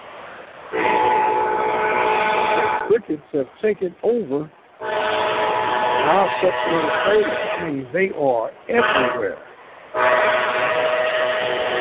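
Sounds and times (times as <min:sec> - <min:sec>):
old stadium train whistle blowing at a football game: 0:00.8 - 0:03.0, 0:04.8 - 0:07.7, 0:08.8 - 0:09.3, 0:09.9 - 0:11.7
speech: 0:02.9 - 0:04.9, 0:06.0 - 0:10.0.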